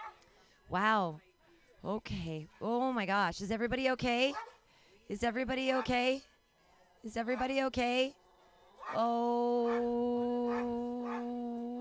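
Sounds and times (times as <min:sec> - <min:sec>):
speech: 0:00.7 - 0:04.5, 0:05.1 - 0:06.3, 0:07.0 - 0:08.2, 0:08.8 - 0:10.8
dog howling: 0:08.8 - 0:11.7.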